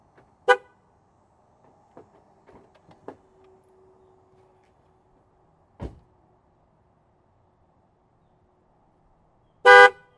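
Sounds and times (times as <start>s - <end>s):
Ford Focus Mk3 car horn: 0.4s - 0.8s, 9.6s - 10.1s.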